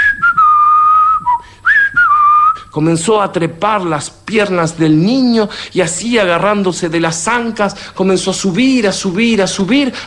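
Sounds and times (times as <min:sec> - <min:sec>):
person whistling a military march tune: 0:00.0 - 0:02.7
speech: 0:02.8 - 0:10.0.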